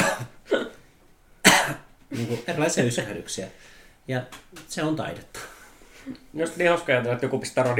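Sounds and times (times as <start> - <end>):
person coughing roughly: 0.0 - 0.8, 1.4 - 2.6
speech: 2.1 - 7.7.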